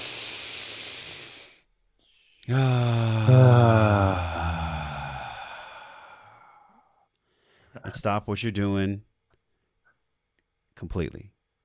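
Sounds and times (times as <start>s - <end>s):
slow deliberate deep breath ending in a low voiced sigh: 0.0s - 7.8s
speech: 2.5s - 3.7s, 7.9s - 9.1s, 10.8s - 11.4s.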